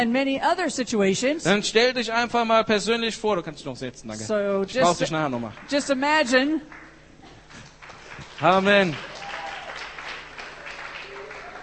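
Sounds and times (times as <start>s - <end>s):
speech: 0.0s - 6.8s, 8.4s - 9.1s
church audience applause: 5.3s - 11.6s.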